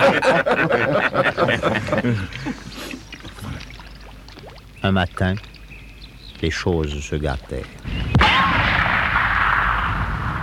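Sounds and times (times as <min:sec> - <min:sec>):
laughter: 0:00.0 - 0:03.0
speech: 0:00.2 - 0:00.8, 0:02.0 - 0:03.0, 0:04.8 - 0:05.5, 0:06.4 - 0:08.0
gunfire from a fissure in the rock aimed at a group: 0:08.2 - 0:10.4.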